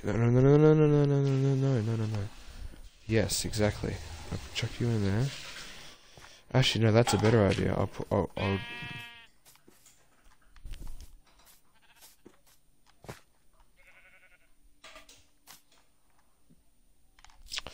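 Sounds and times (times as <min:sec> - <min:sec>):
speech: 0:00.0 - 0:02.4, 0:03.1 - 0:05.5, 0:06.5 - 0:09.0
sheep bleating: 0:08.4 - 0:09.4, 0:11.7 - 0:12.4, 0:13.8 - 0:14.6.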